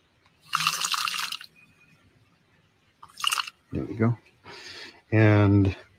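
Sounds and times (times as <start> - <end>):
water being poured into a container: 0.4 - 1.5, 3.0 - 3.6
speech: 3.7 - 4.3, 5.1 - 5.8.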